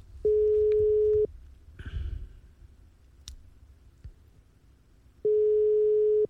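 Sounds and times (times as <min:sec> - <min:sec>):
quiet telephone line noise: 0:00.0 - 0:06.2
telephone ringback tone on an unanswered call: 0:00.3 - 0:01.3, 0:05.2 - 0:06.2.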